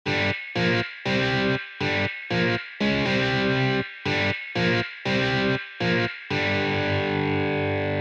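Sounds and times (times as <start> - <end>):
hard riff: 0.1 - 7.9.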